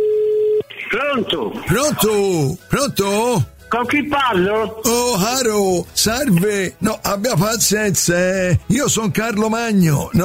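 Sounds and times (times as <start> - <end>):
steady electronic telephone tone: 0.0 - 0.7
person answering over a thin phone line: 0.7 - 4.9
speech: 0.9 - 10.2.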